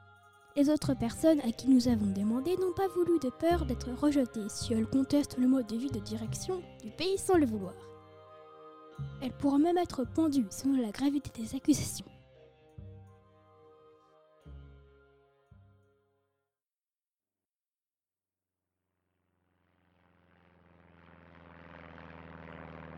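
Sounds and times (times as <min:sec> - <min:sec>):
speech: 0:00.6 - 0:07.9, 0:09.0 - 0:12.2
propeller airplane engine droning: 0:19.1 - 0:22.9.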